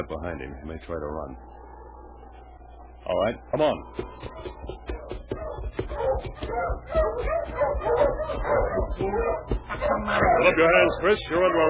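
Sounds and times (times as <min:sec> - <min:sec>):
speech: 0:00.0 - 0:01.6, 0:03.0 - 0:05.1, 0:05.7 - 0:11.6
dog barking and yipping: 0:04.0 - 0:11.2.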